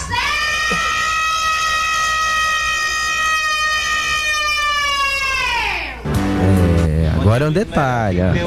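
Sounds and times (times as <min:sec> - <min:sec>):
siren wailing: 0:00.1 - 0:06.1
speech: 0:07.4 - 0:08.4.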